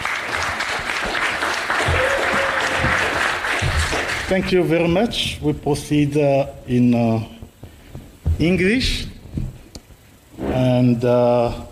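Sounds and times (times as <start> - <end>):
audience applause at a talk: 0.0 - 4.7
speech: 4.3 - 7.4, 8.4 - 9.1, 10.6 - 11.7.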